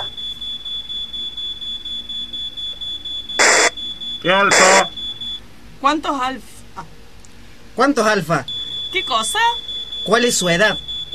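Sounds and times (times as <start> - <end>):
smoke alarm shrilling, set off by barbecue: 0.0 - 5.4, 8.4 - 11.1
speech: 4.2 - 5.0, 5.8 - 7.0, 7.8 - 11.1.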